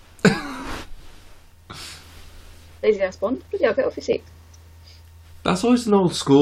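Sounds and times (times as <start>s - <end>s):
person coughing: 0.2s - 0.9s
speech: 2.8s - 4.4s, 5.5s - 6.3s.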